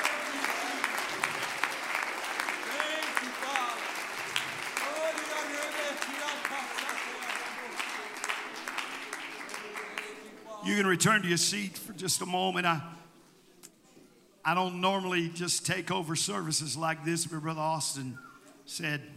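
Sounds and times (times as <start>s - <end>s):
church audience clapping hands: 0.0s - 10.5s
speech: 10.7s - 13.0s, 14.4s - 19.1s.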